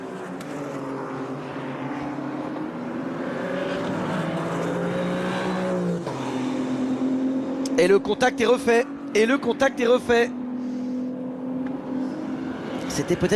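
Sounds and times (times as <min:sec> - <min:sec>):
GT3 race cars roaring past at top speed during a race: 0:00.0 - 0:13.3
speech: 0:07.8 - 0:10.4, 0:13.0 - 0:13.3.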